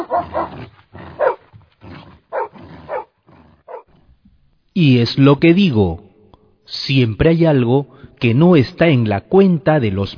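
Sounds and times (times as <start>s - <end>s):
dogs barking as they come after a fox: 0.0s - 1.5s, 2.3s - 3.9s
speech: 0.1s - 0.4s, 4.8s - 6.0s, 6.7s - 10.1s.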